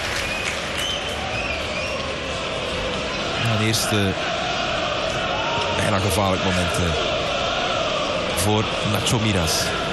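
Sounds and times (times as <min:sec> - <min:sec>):
light hesitant applause from football supporters: 0:00.0 - 0:02.3
stadium crowd noise at a football match: 0:00.0 - 0:09.9
faint whistles from football crowd: 0:00.2 - 0:02.0
speech: 0:03.5 - 0:04.4, 0:05.9 - 0:07.1, 0:08.4 - 0:09.8.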